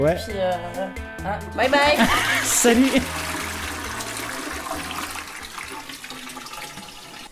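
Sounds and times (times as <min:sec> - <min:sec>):
speech: 0:00.0 - 0:03.4
laughter: 0:01.7 - 0:03.6
toilet flushing: 0:01.7 - 0:07.3.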